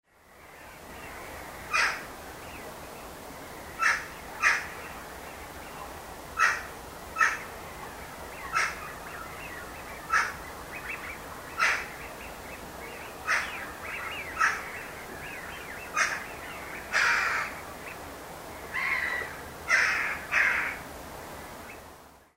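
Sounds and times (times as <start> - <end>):
jackdaw calling at night: 6.4 - 7.5, 8.4 - 12.4, 13.0 - 17.6, 18.7 - 20.8.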